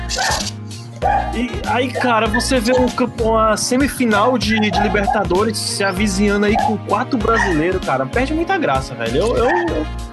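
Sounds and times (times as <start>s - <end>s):
dog barking: 0.1s - 2.9s, 4.5s - 5.2s, 6.5s - 7.6s, 9.4s - 9.8s
speech: 1.4s - 10.0s.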